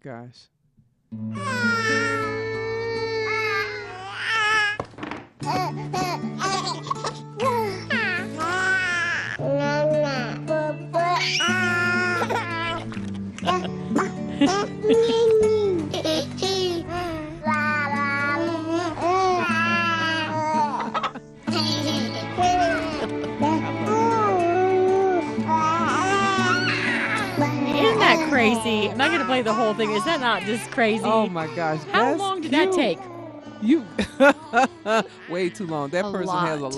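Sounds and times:
speech: 0.0s - 2.2s, 28.4s - 36.7s
baby coos, cries and babbling edited into a classical melody: 1.3s - 4.7s, 5.5s - 12.8s, 13.4s - 20.9s, 21.5s - 28.0s
laughter: 12.9s - 15.4s, 20.6s - 23.6s, 34.0s - 35.3s.

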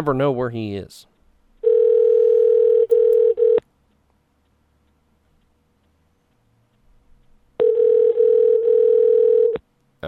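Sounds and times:
speech: 0.0s - 1.1s
telephone ringback tone of an outgoing call: 1.6s - 3.6s, 7.6s - 9.6s.

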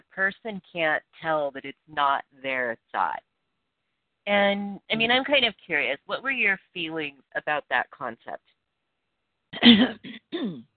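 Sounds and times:
speech: 0.2s - 3.3s, 4.2s - 8.5s, 9.6s - 10.7s
raspy cough: 9.6s - 10.6s
throat clearing: 9.6s - 10.7s.

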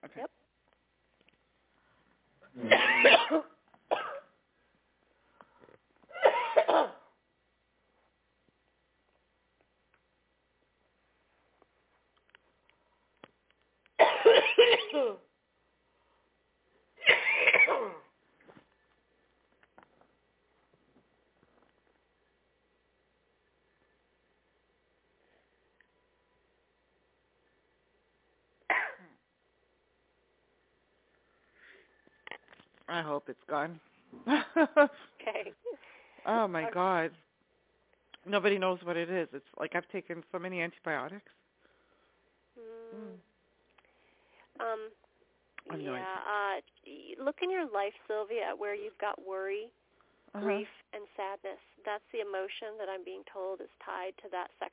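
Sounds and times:
speech: 0.0s - 0.5s, 2.5s - 4.1s, 32.9s - 37.2s, 38.2s - 41.4s, 44.6s - 45.0s, 45.7s - 54.7s
prolonged harsh coughing fit: 2.6s - 4.3s, 6.1s - 7.1s, 14.0s - 15.2s, 17.0s - 18.1s, 28.7s - 29.2s.

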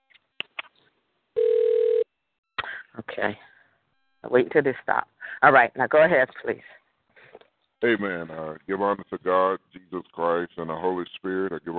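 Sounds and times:
telephone ringing: 1.4s - 2.1s
speech: 3.2s - 3.5s, 4.2s - 6.8s, 7.8s - 11.7s.

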